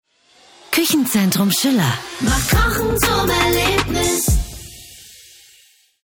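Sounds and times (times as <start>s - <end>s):
German singing voice in a radio spot jingle: 0.7s - 4.8s.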